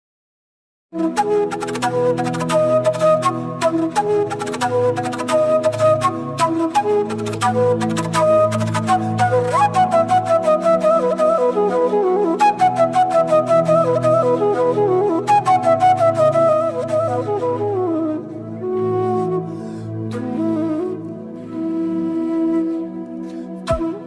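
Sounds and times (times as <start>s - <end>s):
flute background music ringtone: 0.9s - 24.0s.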